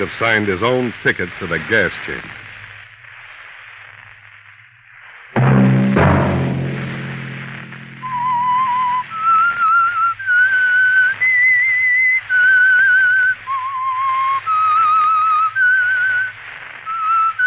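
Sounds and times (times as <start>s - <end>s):
speech: 0.0s - 2.4s
loud orchestral chord: 5.4s - 8.2s
lone clear whistle carrying a slow stepping melody: 8.0s - 16.2s.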